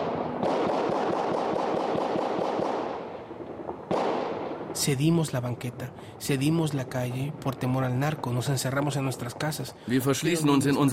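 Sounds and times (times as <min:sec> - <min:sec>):
rifle fire in Culiacán, Sinaloa: 0:00.0 - 0:04.9
New Year's fireworks cracking: 0:00.0 - 0:10.9
speech: 0:04.8 - 0:10.9.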